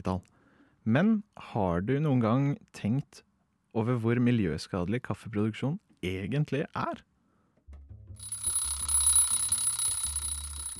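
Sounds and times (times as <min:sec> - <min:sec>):
speech: 0:00.0 - 0:07.1
alarm clock beeping and ringing: 0:08.2 - 0:10.7.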